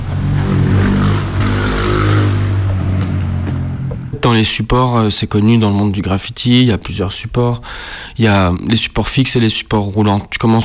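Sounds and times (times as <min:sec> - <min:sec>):
car engine humming while driving slowly to find parking: 0:00.0 - 0:04.6
speech: 0:04.2 - 0:10.6.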